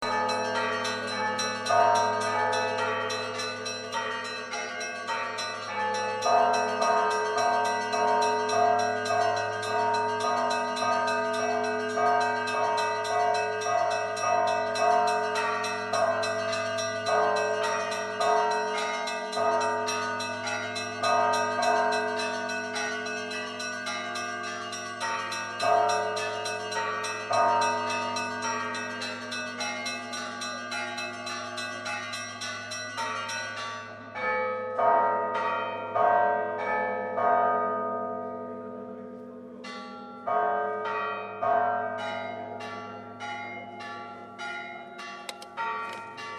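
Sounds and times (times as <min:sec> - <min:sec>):
bells ringing: 0:00.0 - 0:46.3.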